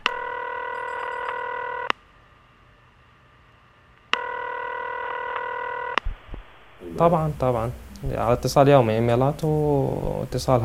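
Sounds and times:
telephone touch tones as a number is dialed: 0:00.0 - 0:02.0, 0:04.1 - 0:06.0
speech: 0:07.0 - 0:10.6.

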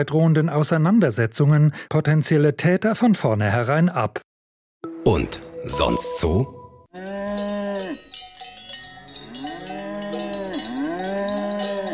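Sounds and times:
speech: 0:00.0 - 0:04.3, 0:05.0 - 0:08.0
cows mooing: 0:07.0 - 0:08.1, 0:09.1 - 0:11.9
cowbells clanging: 0:07.1 - 0:11.9.

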